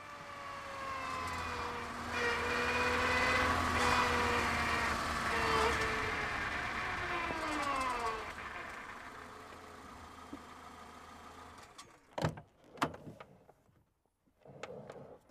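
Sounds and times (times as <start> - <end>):
car engine running and switched off: 0.0 - 11.7.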